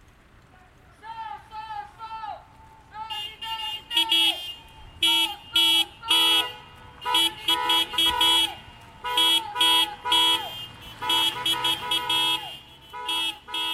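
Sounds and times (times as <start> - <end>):
car horns honking from a line of waiting cars: 3.1 - 13.7.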